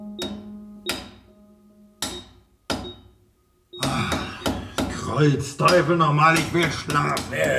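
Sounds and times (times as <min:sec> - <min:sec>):
hammering at a hole in a house wall: 0:00.2 - 0:01.3, 0:02.0 - 0:03.2, 0:03.8 - 0:07.5
speech: 0:05.2 - 0:07.5.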